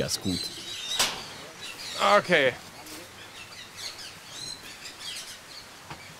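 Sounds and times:
speech: 0.0s - 0.6s, 2.0s - 2.7s
kea parrots calling in a zoo aviary: 0.0s - 5.8s.

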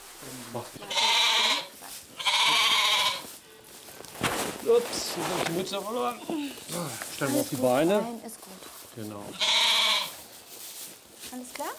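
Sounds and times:
speech: 0.2s - 1.5s, 4.6s - 9.7s, 11.3s - 11.7s
billy goat bleating in a stall: 0.8s - 3.7s, 5.9s - 6.8s, 9.3s - 10.2s.

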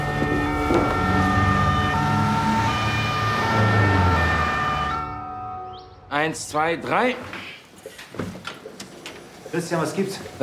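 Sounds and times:
ambulance siren wailing: 0.0s - 6.1s
speech: 6.2s - 7.4s, 9.5s - 10.4s.

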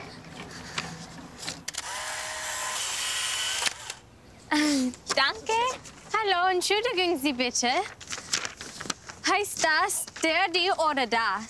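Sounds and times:
camera shutter clicks taking a photo: 1.7s - 4.0s
speech: 4.5s - 8.0s, 9.4s - 11.4s.

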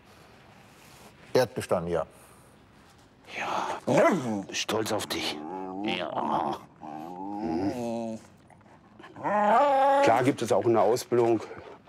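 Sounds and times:
speech: 1.4s - 2.3s, 3.4s - 6.7s, 7.4s - 8.3s, 9.2s - 11.8s
detection dog whining after indicating hidden pyrotechnics: 5.3s - 10.4s.

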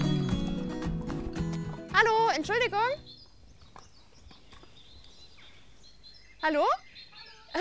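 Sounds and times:
horse hooves clopping along a long-distance hiking trail: 0.0s - 4.8s
speech: 2.0s - 3.2s, 6.4s - 6.8s.

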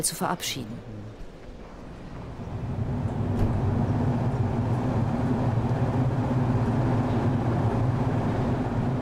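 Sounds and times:
speech: 0.0s - 1.0s
train departing from station with droning engine hum: 0.5s - 8.9s.

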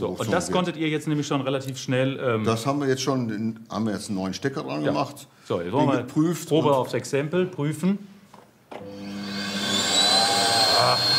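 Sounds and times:
speech: 0.0s - 8.1s
repaired vacuum cleaner running: 8.8s - 11.1s.

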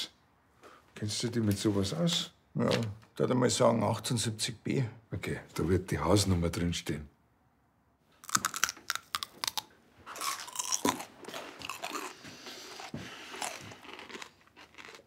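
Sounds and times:
speech: 1.0s - 7.1s
loud crunchy chewing: 8.2s - 15.0s.

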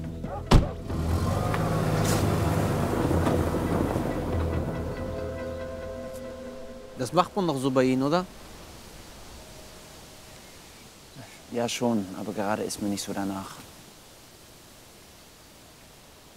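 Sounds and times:
car engine and road noise as the car drives off: 0.2s - 6.7s
car door thudding shut: 0.4s - 0.9s
speech: 7.0s - 8.5s, 11.5s - 13.7s.

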